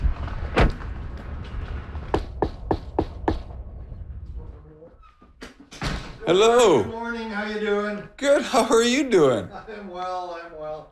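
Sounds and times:
loud thud: 0.0s - 4.2s, 5.6s - 6.3s
faint noise: 0.0s - 10.8s
sharp knocks on the door of a gigantic ship: 2.1s - 3.4s
speech: 6.3s - 10.8s.

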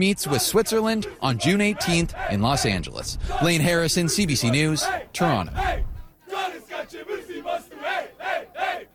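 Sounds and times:
speech: 0.0s - 5.9s
large crowd of soccer fans chanting in unison in Toronto: 0.1s - 2.4s, 3.2s - 8.9s.

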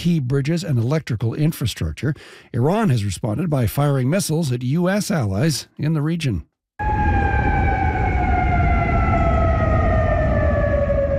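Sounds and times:
speech: 0.0s - 6.5s
air raid sirens wailing in Kuwait City, Qatar and Bahrain: 6.8s - 11.1s.

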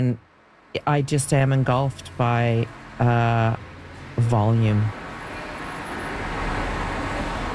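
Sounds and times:
speech: 0.0s - 5.0s
road traffic roar: 0.0s - 7.5s
cars passing: 0.2s - 7.5s.

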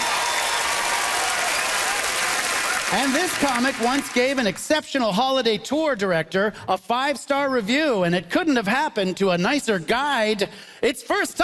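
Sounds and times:
audience cheers: 0.0s - 4.4s
large audience applause: 0.0s - 4.6s
speech: 2.9s - 11.4s.

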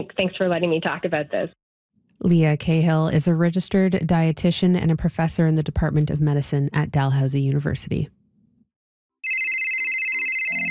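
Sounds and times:
speech: 0.0s - 1.6s, 2.2s - 8.2s
telephone ringing with a continuous electronic ring: 9.2s - 10.7s.

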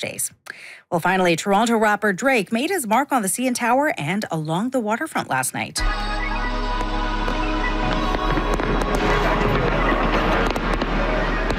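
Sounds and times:
speech: 0.0s - 6.2s
crowd cheering: 5.8s - 11.5s
fireworks popping and banging on a city waterfront: 6.8s - 11.5s.

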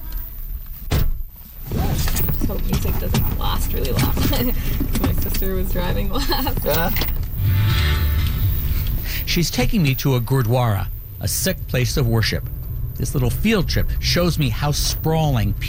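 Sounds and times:
car road and engine rumble in the cabin on a drive through Peel region: 0.0s - 15.6s
mechanical bump: 0.8s - 9.0s
speech: 2.5s - 8.0s, 9.3s - 15.6s.

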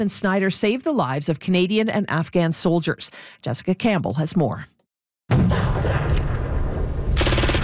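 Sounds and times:
speech: 0.0s - 4.8s
simulated explosions in an ambush reenactment: 5.3s - 7.6s
simulated automatic gunfire in an ambush reenactment: 7.2s - 7.6s.

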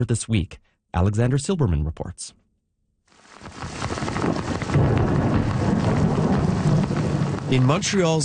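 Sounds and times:
speech: 0.0s - 2.4s, 7.5s - 8.2s
heavy rain downpour: 3.1s - 8.2s
low thunder rumbling: 3.4s - 8.2s.

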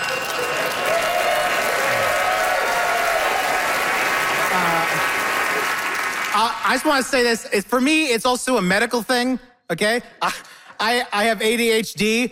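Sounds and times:
large audience clapping: 0.0s - 7.1s
audience whoops and shouts: 0.6s - 3.8s
speech: 6.4s - 12.2s.

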